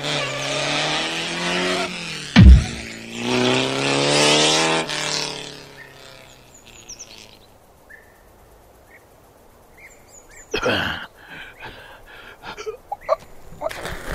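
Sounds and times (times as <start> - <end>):
car engine revving and accelerating: 0.0 - 5.6
sharp heavy thud: 2.4 - 2.9.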